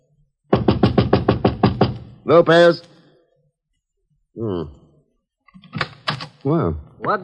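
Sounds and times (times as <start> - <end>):
loud insistent knocking on an apartment door: 0.5 - 2.2
speech: 2.3 - 2.9, 4.4 - 4.8, 5.7 - 7.2.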